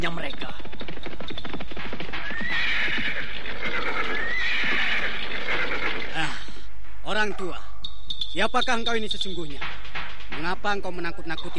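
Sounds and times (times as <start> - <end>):
speech: 0.0 - 0.7, 7.1 - 7.6, 8.4 - 11.5
cavalry horse hooves clopping and stamping: 0.0 - 6.2, 8.1 - 11.5
horses of an approaching cavalry troop neighing: 0.8 - 6.7.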